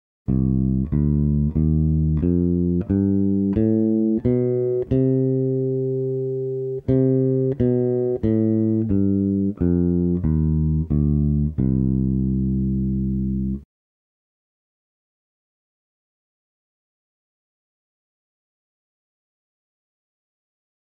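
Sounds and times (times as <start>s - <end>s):
melodic bass in a minor key: 0.3s - 13.6s.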